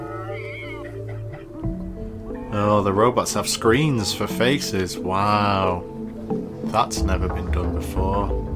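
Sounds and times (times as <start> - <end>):
cat meowing: 0.0 - 1.0
speech: 2.5 - 5.9, 6.7 - 8.4.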